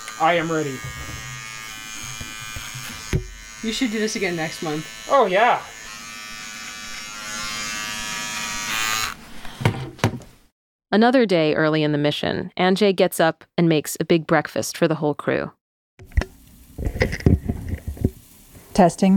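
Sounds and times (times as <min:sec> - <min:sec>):
electric shaver buzzing while shaving a beard: 0:00.0 - 0:09.6
speech: 0:00.2 - 0:01.3, 0:03.6 - 0:05.8, 0:10.9 - 0:15.6, 0:16.8 - 0:17.3, 0:18.8 - 0:19.1.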